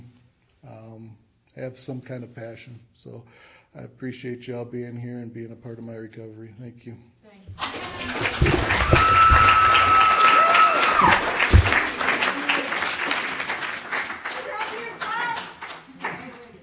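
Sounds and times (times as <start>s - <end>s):
speech: 0.8s - 9.5s
audience applause for a speaker at a meeting: 7.6s - 16.6s
whistle or cheer from the audience: 8.7s - 11.3s.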